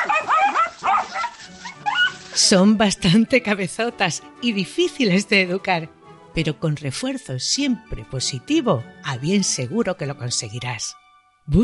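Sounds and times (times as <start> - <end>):
small dog barking with sharp high-pitched yaps: 0.0 - 2.4
speech: 2.4 - 11.6.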